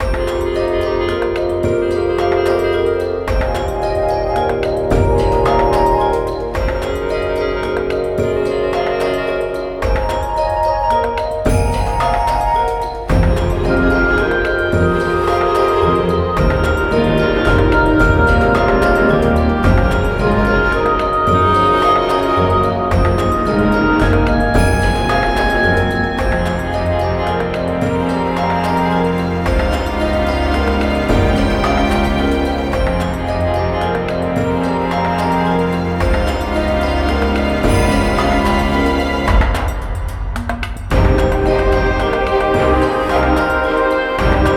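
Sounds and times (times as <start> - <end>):
dungeon underwater cave background game music: 0.0 - 44.5.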